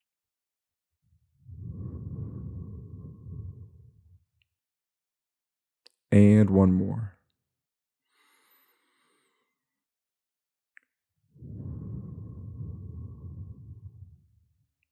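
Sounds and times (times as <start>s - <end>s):
slow deep breaths during breathing exercise: 1.4s - 4.3s, 8.1s - 9.6s, 11.3s - 14.7s
speech: 6.1s - 7.1s.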